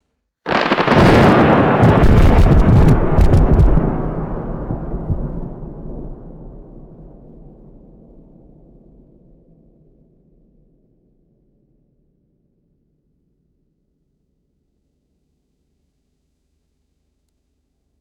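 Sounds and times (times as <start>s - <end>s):
distant thunder crack and rolling rumble: 0.5s - 9.0s.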